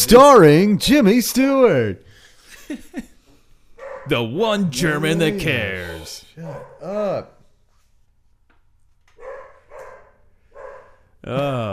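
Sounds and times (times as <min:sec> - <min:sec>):
speech: 0:00.0 - 0:02.1, 0:02.7 - 0:03.1, 0:04.0 - 0:07.4, 0:11.2 - 0:11.7
dog barking: 0:03.8 - 0:04.1, 0:06.4 - 0:06.9, 0:09.2 - 0:11.0.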